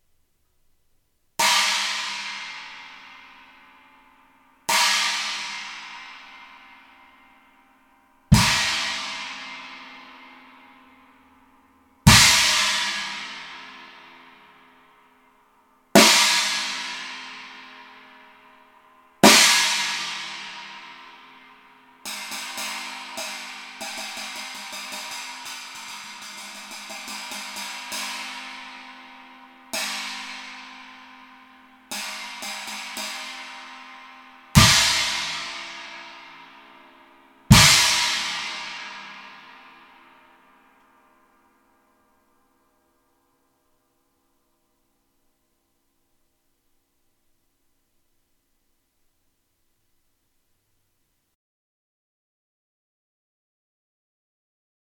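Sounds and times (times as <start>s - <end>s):
20-inch rock china cymbal: 1.4s - 42.3s.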